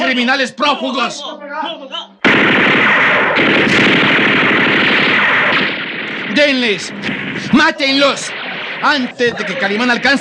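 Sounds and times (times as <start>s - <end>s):
speech: 0.1s - 3.8s, 6.4s - 10.1s
rapid gunfire from armed agents' guns: 2.2s - 10.1s.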